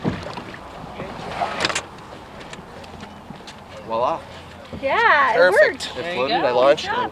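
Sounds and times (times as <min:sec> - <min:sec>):
kayak paddle strokes splashing in water: 0:00.0 - 0:02.9
speech: 0:03.9 - 0:07.1.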